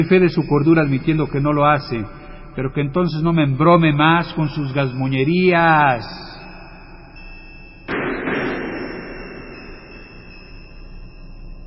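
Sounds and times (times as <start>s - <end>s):
speech: 0.0s - 6.4s
gunshots: 7.9s - 10.3s.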